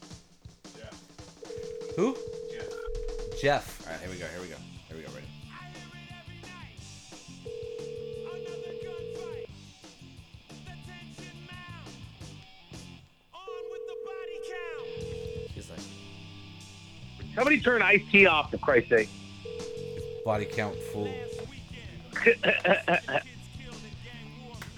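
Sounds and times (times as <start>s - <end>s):
outgoing phone call electronic ring tone: 1.3s - 3.8s, 7.2s - 9.5s, 13.4s - 18.1s, 18.9s - 23.2s
speech: 2.0s - 2.4s, 3.4s - 5.3s, 17.4s - 19.2s, 20.2s - 21.3s, 22.2s - 23.3s
laughter: 21.5s - 24.4s.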